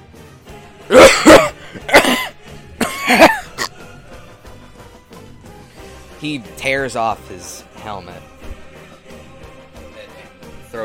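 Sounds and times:
man coughing up smoke after casting a fireball: 0.9 - 3.9
speech: 3.1 - 3.4, 6.2 - 8.3.

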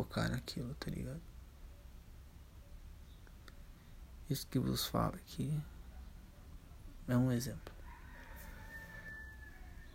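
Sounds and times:
speech: 0.0 - 1.3, 4.3 - 5.7, 7.1 - 7.8
rooster crowing: 7.5 - 9.9.

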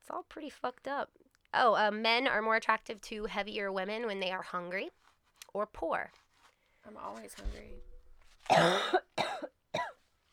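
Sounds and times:
speech: 0.1 - 6.2, 6.8 - 7.9, 8.5 - 9.1
person coughing: 8.5 - 10.0
throat clearing: 8.5 - 10.0.

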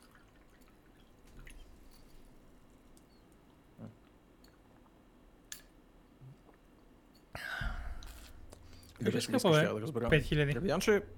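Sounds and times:
person sipping water: 7.9 - 9.0
speech: 9.0 - 11.1.

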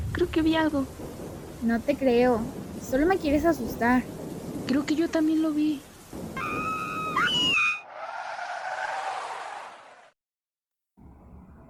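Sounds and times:
speech: 0.2 - 5.9
car tires screeching as it brakes hard on a road: 6.4 - 10.1
rushing skid noise of braking car: 6.4 - 10.2.

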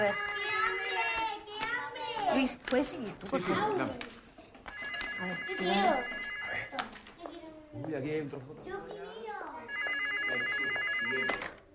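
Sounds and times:
speech: 0.0 - 0.3, 2.4 - 4.2, 5.2 - 7.0, 7.7 - 9.0, 10.3 - 11.6
mobile phone ringing in a faint electronic tone pattern: 0.0 - 1.1, 4.7 - 6.8, 9.6 - 11.7.

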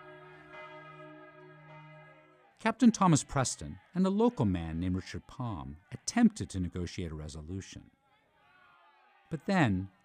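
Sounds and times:
church bells ringing: 0.0 - 5.1
speech: 2.6 - 8.0, 9.3 - 10.0.

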